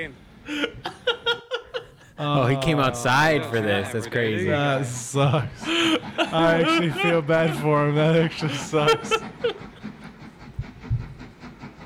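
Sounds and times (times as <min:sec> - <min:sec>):
speech: 0:00.0 - 0:01.0, 0:02.2 - 0:09.3
train rumbling along rails: 0:00.0 - 0:11.8
laughter: 0:00.5 - 0:10.0.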